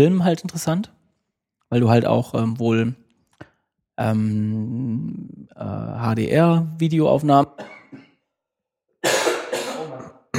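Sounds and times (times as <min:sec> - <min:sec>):
speech: 0:00.0 - 0:01.0, 0:01.7 - 0:03.0, 0:04.0 - 0:08.0
person with a lingering cough coughing: 0:07.6 - 0:08.2, 0:09.0 - 0:10.3.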